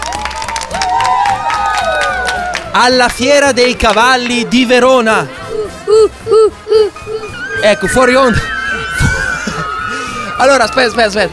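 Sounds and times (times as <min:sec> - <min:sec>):
crowd cheering: 0:00.0 - 0:04.5, 0:08.3 - 0:11.3
crowd clapping for a class of primary school children at a horse fair: 0:00.0 - 0:04.5
speech: 0:02.8 - 0:07.0, 0:07.6 - 0:08.5, 0:10.4 - 0:11.3
laughter: 0:05.6 - 0:10.5.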